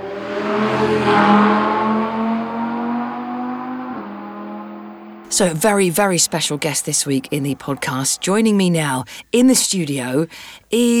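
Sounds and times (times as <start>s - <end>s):
petrol car engine roaring and revving: 0.0s - 8.5s
speech: 5.4s - 10.9s.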